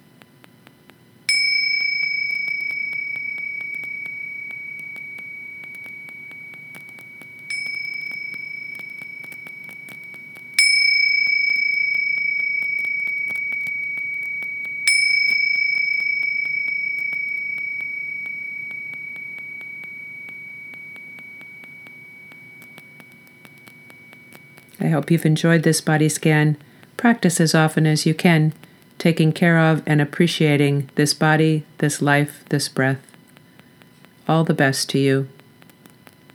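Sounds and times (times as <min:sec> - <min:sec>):
meditation bells being struck: 0:01.3 - 0:26.7
speech: 0:24.8 - 0:33.1, 0:34.3 - 0:35.4.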